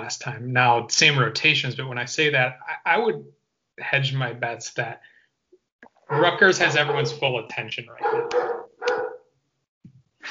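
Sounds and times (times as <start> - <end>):
speech: 0.0 - 5.1, 6.1 - 8.6
dog barking: 6.1 - 7.3, 7.9 - 9.3.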